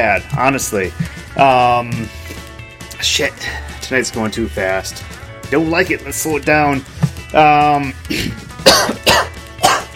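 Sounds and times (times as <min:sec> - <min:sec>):
speech: 0:00.0 - 0:02.2, 0:03.0 - 0:09.3
person clearing throat: 0:08.1 - 0:09.9
sharp coughs: 0:08.1 - 0:09.9.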